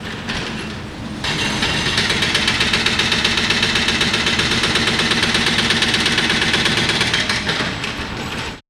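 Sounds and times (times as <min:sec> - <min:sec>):
jackhammer at a criminal justice center in downtown Houston: 0:00.0 - 0:08.6.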